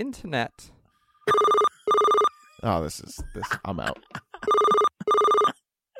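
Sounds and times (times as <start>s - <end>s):
speech: 0.0s - 0.8s, 2.6s - 4.6s
electronic telephone ringing: 1.2s - 2.6s, 4.4s - 5.5s.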